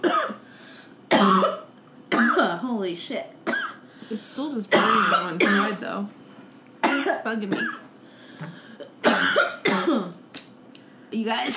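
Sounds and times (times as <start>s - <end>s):
harsh forceful coughs: 0.0s - 0.4s, 1.1s - 2.4s, 3.4s - 3.9s, 4.7s - 5.8s, 6.8s - 7.9s, 8.8s - 10.2s
speech: 2.8s - 3.4s, 4.0s - 6.2s, 7.2s - 7.8s, 11.1s - 11.5s.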